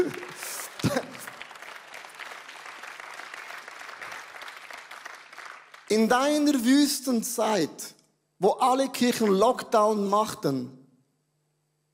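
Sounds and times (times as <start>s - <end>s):
audience applause: 0.0s - 6.0s
speech: 5.9s - 10.8s.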